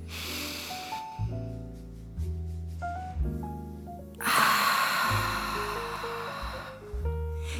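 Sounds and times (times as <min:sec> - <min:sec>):
slow deep breathing through the nose during a breathing exercise: 0:00.0 - 0:01.6, 0:04.2 - 0:07.5
soft instrumental music: 0:00.0 - 0:07.5.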